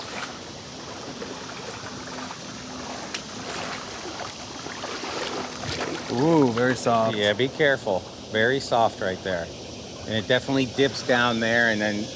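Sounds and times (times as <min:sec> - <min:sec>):
person in waders wading through cold water: 0:00.0 - 0:07.6
speech: 0:06.1 - 0:12.1.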